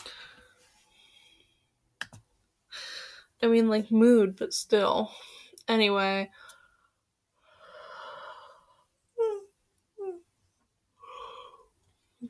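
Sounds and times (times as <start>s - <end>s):
speech: 3.4s - 6.4s
yawn: 11.0s - 11.7s.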